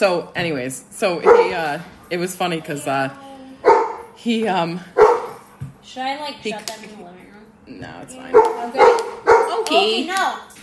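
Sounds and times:
speech: 0:00.0 - 0:03.3, 0:04.2 - 0:05.0, 0:05.8 - 0:10.6
dog barking: 0:01.2 - 0:01.6, 0:03.6 - 0:04.1, 0:05.0 - 0:05.4, 0:08.3 - 0:09.8.

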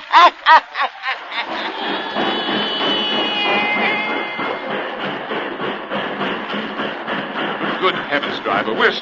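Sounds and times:
laughter: 0:00.0 - 0:08.9
train rumbling and hissing at a small railway depot in Louisiana: 0:00.0 - 0:09.0
speech: 0:00.2 - 0:01.6, 0:08.5 - 0:09.0
faint high train squeal: 0:01.9 - 0:05.4.

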